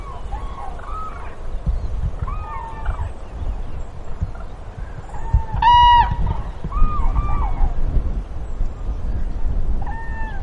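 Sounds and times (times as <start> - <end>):
common crane calls: 0.0 - 1.4, 2.2 - 3.2, 5.1 - 7.8
heavy low wind rumble: 0.0 - 10.4.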